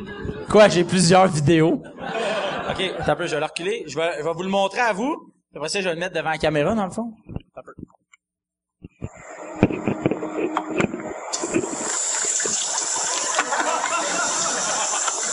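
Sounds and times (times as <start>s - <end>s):
speech: 0.5s - 7.2s, 10.4s - 11.7s
laughter: 1.7s - 3.4s, 13.2s - 15.3s
diarrhea splashing into a toilet: 11.3s - 15.3s.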